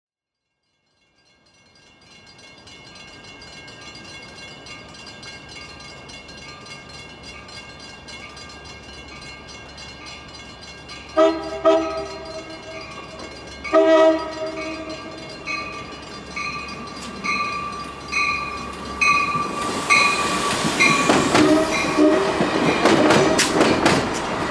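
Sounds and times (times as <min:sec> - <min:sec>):
train bell in the USA: 0:00.6 - 0:24.0
train horn in the USA: 0:11.2 - 0:12.7, 0:13.7 - 0:15.2, 0:19.0 - 0:23.6.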